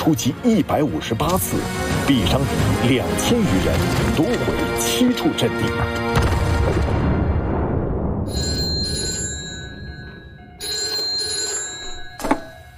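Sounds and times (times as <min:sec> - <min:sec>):
speech: 0:00.0 - 0:07.2
old-style telephone bell ringing: 0:08.3 - 0:12.7.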